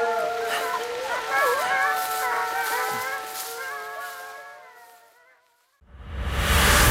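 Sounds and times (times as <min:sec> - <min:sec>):
pack of wolves howling at the edge of a forest: 0:00.0 - 0:05.8
loud rushing noise: 0:05.9 - 0:06.9.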